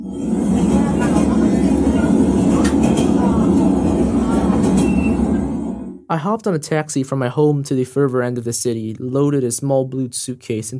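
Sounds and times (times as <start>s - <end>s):
train in Vietnam running on rails: 0.0s - 6.0s
speech: 6.1s - 10.7s.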